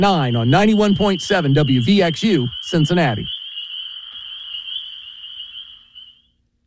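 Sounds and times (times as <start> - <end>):
speech: 0.0 - 3.4
crickets chirping with a high-pitched trill: 0.0 - 6.5.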